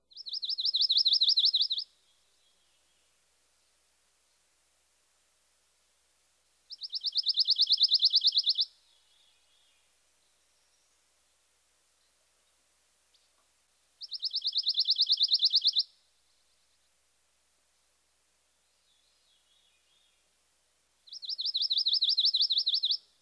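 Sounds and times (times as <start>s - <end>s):
pine warbler singing a loose musical trill: 0.1s - 1.8s, 6.8s - 9.4s, 14.0s - 15.8s, 21.1s - 23.0s.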